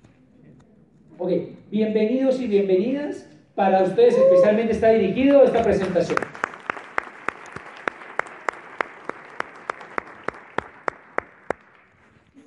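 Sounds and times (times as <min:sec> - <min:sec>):
speech: 0:01.2 - 0:06.3
audience applause: 0:05.5 - 0:12.2.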